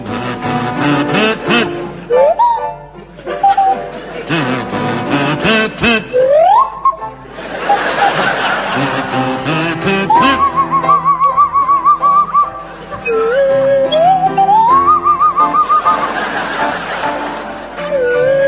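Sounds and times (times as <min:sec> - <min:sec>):
audience laughter and chuckles: 0:00.0 - 0:18.4
buzzy kazoo playing a lilting waltz tune: 0:00.0 - 0:18.4
swanee whistle gliding and warbling between notes in a waltz: 0:02.1 - 0:02.7, 0:03.4 - 0:03.8, 0:10.1 - 0:16.1, 0:17.8 - 0:18.4.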